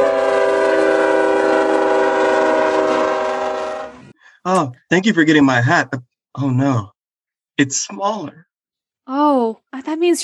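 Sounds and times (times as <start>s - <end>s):
train horn blaring: 0.0s - 4.1s
speech: 4.4s - 6.9s, 7.6s - 8.5s, 9.1s - 10.2s.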